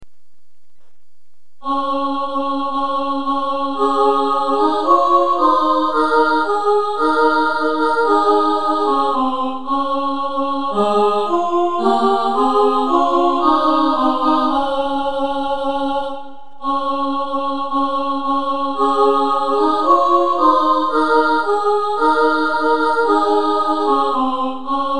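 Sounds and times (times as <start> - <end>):
choir singing soprano and alto parts: 1.6 - 24.9.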